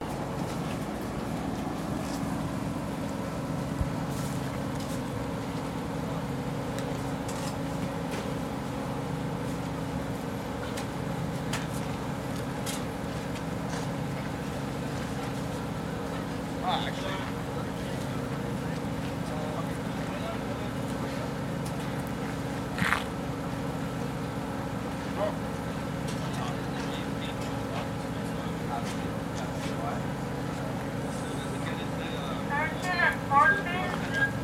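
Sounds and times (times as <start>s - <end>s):
food trucks: 0.0s - 34.4s.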